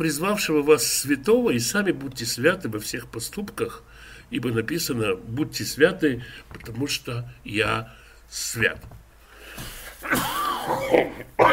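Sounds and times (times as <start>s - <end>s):
speech: 0.0s - 9.0s
person with a cold coughing: 10.0s - 11.5s.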